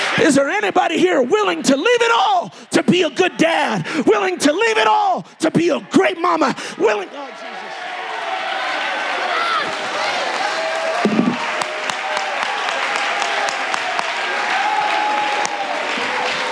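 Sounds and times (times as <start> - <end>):
speech: 0.2 - 7.5
raised voices: 2.8 - 16.4
audience clapping: 6.5 - 16.4.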